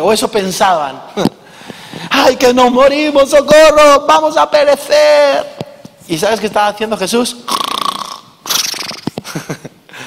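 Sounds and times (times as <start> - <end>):
speech: 0.0 - 1.4, 2.2 - 7.6
voice imitating snoring: 7.5 - 9.0
laughter: 9.2 - 9.8.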